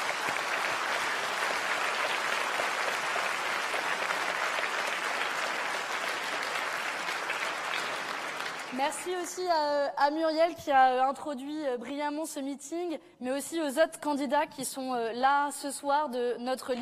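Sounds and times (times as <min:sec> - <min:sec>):
large crowd applauding at a political campaign meeting in France: 0:00.0 - 0:09.4
speech: 0:08.8 - 0:16.7.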